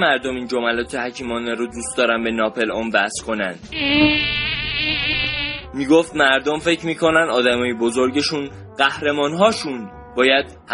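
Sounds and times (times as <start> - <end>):
speech: 0.0 - 10.7
mosquito buzzing with thin high whine: 3.6 - 5.7.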